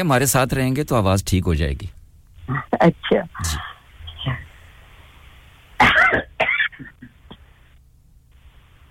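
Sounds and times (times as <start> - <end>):
speech: 0.0 - 4.4
harsh coughing from a person with a sore voice and throat: 5.8 - 7.4.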